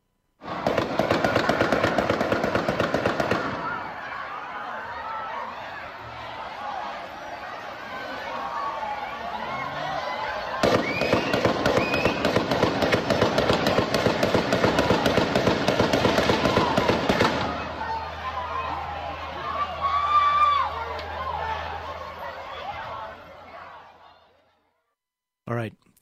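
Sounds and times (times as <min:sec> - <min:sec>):
rapid gunshots fired along a parade route: 0:00.4 - 0:03.9, 0:10.6 - 0:17.8
crowd voices and chatter along a parade route: 0:00.4 - 0:24.9.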